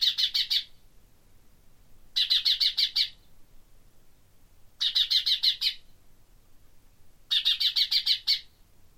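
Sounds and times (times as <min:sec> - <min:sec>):
common chaffinch calling: 0:00.0 - 0:00.8, 0:02.2 - 0:03.3, 0:04.8 - 0:05.9, 0:07.3 - 0:08.6.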